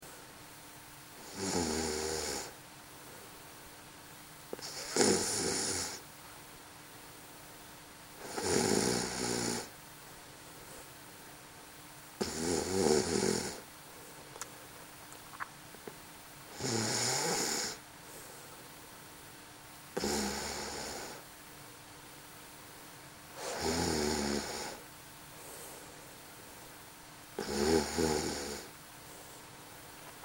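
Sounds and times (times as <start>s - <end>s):
woman snoring: 1.2s - 2.6s, 4.6s - 6.0s, 8.2s - 9.7s, 12.2s - 13.6s, 16.5s - 17.8s, 20.0s - 21.2s, 23.4s - 24.8s, 27.4s - 28.7s.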